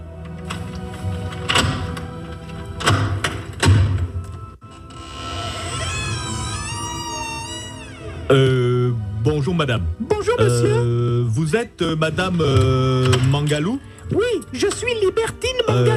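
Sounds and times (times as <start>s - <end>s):
door creaking open: 0.2s - 8.4s
door latch clunk: 0.4s - 4.4s, 12.5s - 13.6s
speech: 8.3s - 8.7s, 9.3s - 15.9s.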